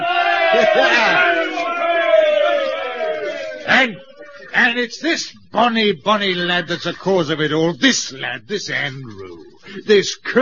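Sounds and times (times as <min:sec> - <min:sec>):
group of men cheering and shouting: 0:00.0 - 0:04.7
speech: 0:00.6 - 0:01.5, 0:03.8 - 0:10.4.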